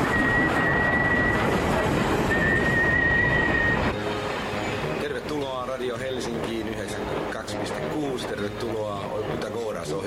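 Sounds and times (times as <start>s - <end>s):
thin high squeal of an intercity train: 0.0s - 5.0s
intercity train pulling into a station platform: 0.0s - 10.0s.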